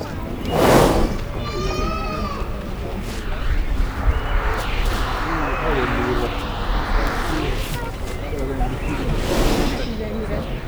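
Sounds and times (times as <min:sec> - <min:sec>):
Asian elephant sniffing at a zoo: 0:00.1 - 0:08.2, 0:08.7 - 0:10.5.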